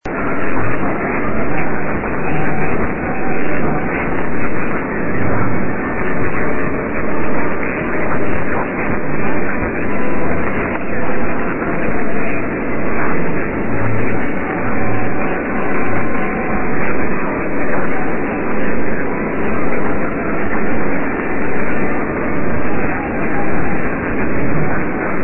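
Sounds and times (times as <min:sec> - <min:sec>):
radio: 0:00.1 - 0:25.2.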